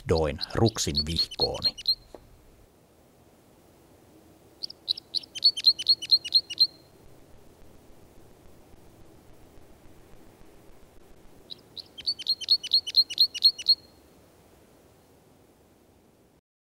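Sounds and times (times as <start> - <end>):
background hiss: 0.0 - 16.4
speech: 0.1 - 1.9
Red Crossbill flight calls in Pirkkola, Helsinki: 0.2 - 2.1, 4.6 - 6.9, 11.5 - 13.9.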